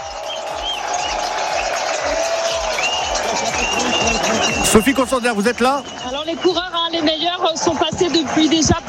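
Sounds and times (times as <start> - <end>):
whistles: 0.0 - 1.7, 2.6 - 6.9
roadside cycling race crowd cheering: 0.0 - 8.8
speech: 4.7 - 8.8.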